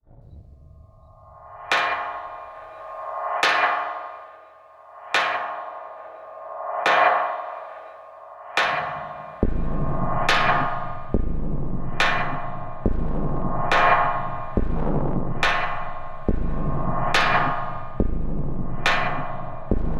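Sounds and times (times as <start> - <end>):
metal beat: 1.5 - 19.9.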